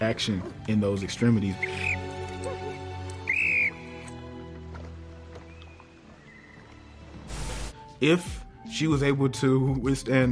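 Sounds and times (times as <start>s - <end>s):
speech: 0.0s - 2.0s, 8.0s - 10.3s
shrill whistle blast: 1.6s - 2.1s, 3.2s - 4.0s.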